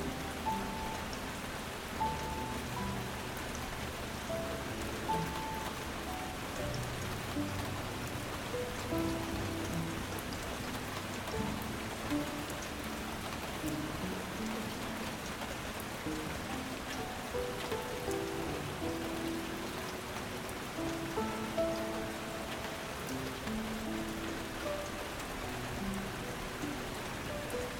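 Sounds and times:
heavy rain falling steadily and densely: 0.0s - 27.7s
soft sustained relaxing musical tones: 0.0s - 27.7s.

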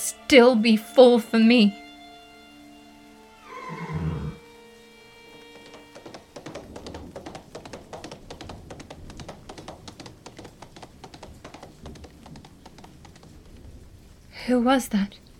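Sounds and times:
speech: 0.3s - 1.8s, 14.5s - 15.2s
horse whinnying: 3.4s - 4.4s
horse hooves galloping away: 3.5s - 15.3s.

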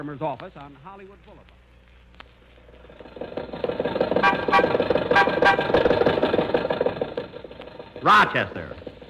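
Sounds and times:
speech: 0.0s - 1.6s, 8.0s - 8.8s
old Maxwell car engine chugging as it drives: 2.5s - 9.0s.

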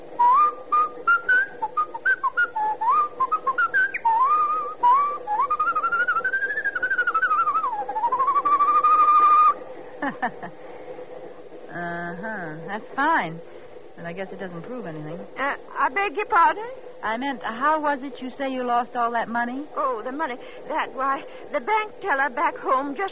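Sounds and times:
person whistling a tune: 0.2s - 9.6s
speech: 12.9s - 23.0s.

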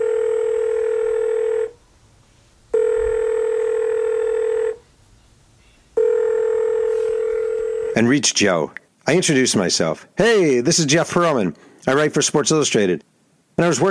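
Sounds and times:
electronic telephone tone as a call goes through: 0.0s - 1.8s, 2.7s - 4.8s, 6.0s - 8.0s
speech: 8.0s - 13.8s.

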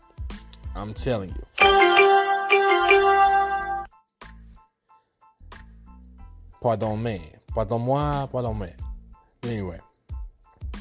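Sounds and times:
speech: 0.8s - 1.9s, 6.6s - 8.8s, 9.4s - 9.9s
phone notification alert electronic chime: 1.6s - 3.9s.

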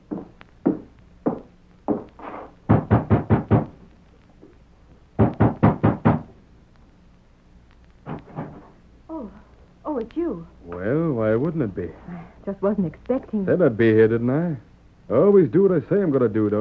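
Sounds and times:
knocking on the wooden front door of a home: 0.1s - 2.1s, 2.7s - 3.8s, 5.2s - 6.3s, 8.1s - 8.7s
speech: 10.0s - 16.5s.

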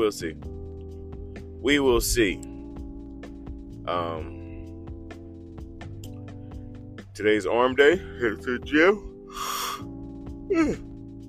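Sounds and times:
speech: 0.0s - 0.5s, 1.6s - 2.5s, 3.9s - 4.4s, 7.2s - 9.9s, 10.5s - 10.9s
person yawning: 10.5s - 10.9s.

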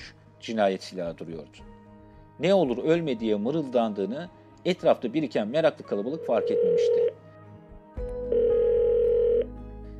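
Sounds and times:
speech: 0.4s - 1.8s, 2.4s - 7.2s
telephone ringback tone on the line: 6.2s - 7.2s, 8.3s - 9.9s.

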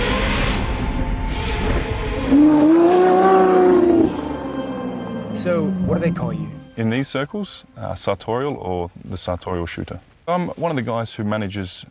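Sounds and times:
sports car engine revving: 0.0s - 6.6s
speech: 5.4s - 11.8s.

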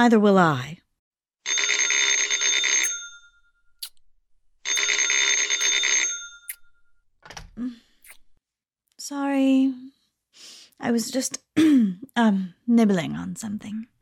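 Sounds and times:
speech: 0.0s - 0.8s, 7.6s - 7.8s, 9.1s - 10.0s, 10.8s - 14.0s
old-style telephone bell ringing: 1.4s - 3.7s, 4.6s - 7.0s.

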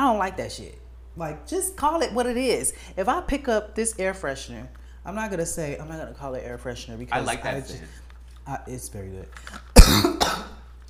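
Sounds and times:
speech: 0.2s - 10.5s
person coughing after choking on saliva: 9.7s - 10.6s.

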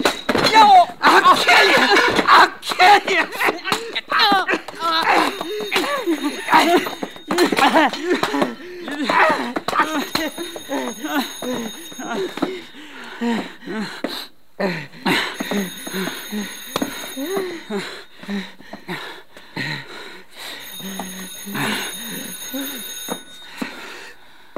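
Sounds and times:
laughter: 0.9s - 13.4s
telephone ringing with electronic trill: 5.0s - 12.8s, 15.3s - 18.2s, 20.4s - 24.2s.

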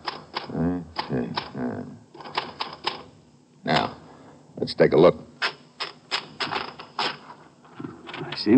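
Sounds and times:
typewriter keystrokes typing on an inserted sheet of paper: 0.0s - 1.6s, 2.2s - 3.1s, 5.4s - 7.2s
speech: 4.7s - 5.3s.

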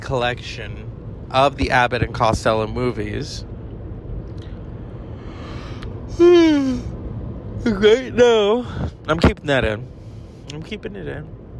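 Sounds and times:
speech: 0.1s - 3.5s, 6.2s - 6.9s, 7.6s - 11.4s
person yawning: 5.6s - 6.9s.

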